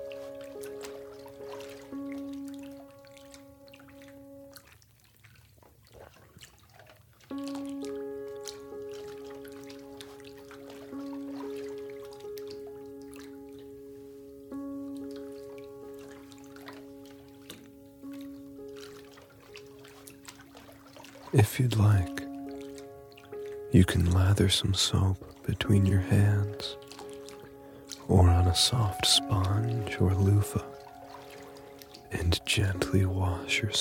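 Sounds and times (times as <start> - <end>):
soft sustained musical tones: 0.0 - 5.3, 7.2 - 33.7
shower water trickling: 0.0 - 33.7
speech: 21.3 - 22.2, 23.8 - 26.8, 28.1 - 30.8, 32.4 - 33.7.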